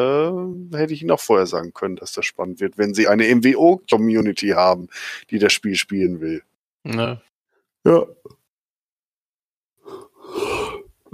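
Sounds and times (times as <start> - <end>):
speech: 0.0 - 8.4
person yawning: 9.9 - 11.1.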